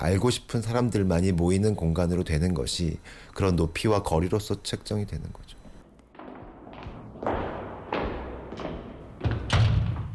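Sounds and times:
speech: 0.0 - 5.6
heavy steel bookstore door opening and closing with metallic thuds: 6.1 - 10.1.

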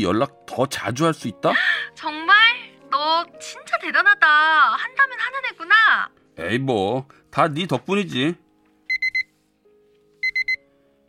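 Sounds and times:
speech: 0.0 - 2.1, 3.4 - 8.4
pager beeping: 8.9 - 9.4, 10.2 - 10.6.

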